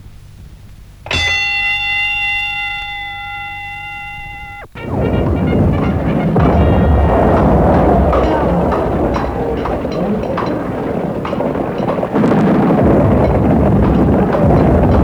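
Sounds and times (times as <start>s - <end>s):
bell rung to start a fight: 1.1s - 15.0s
loud chaotic crowd noise and commotion: 4.6s - 15.0s.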